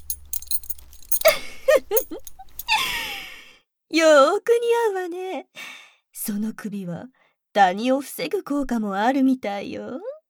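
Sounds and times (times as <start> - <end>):
collar being fastened metal jangling and clinking: 0.0 - 2.8
speech: 3.9 - 5.6, 6.3 - 10.1.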